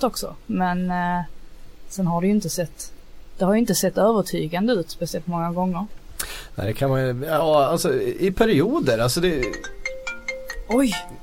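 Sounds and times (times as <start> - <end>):
speech: 0.0 - 9.8, 10.7 - 11.2
mobile phone ringtone beeping: 9.4 - 11.2.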